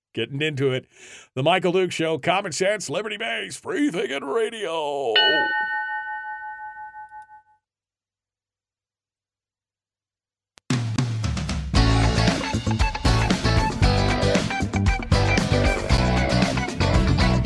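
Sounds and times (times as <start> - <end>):
speech: 0.2 - 5.8
telephone ringing with a warbling electronic tone: 5.2 - 7.5
loud music: 11.8 - 17.4.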